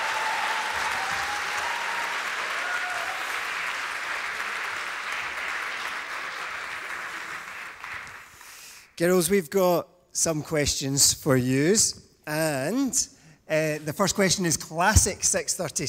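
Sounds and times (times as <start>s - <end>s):
crowd applauding girls on stage: 0.0s - 8.6s
speech: 9.0s - 15.8s.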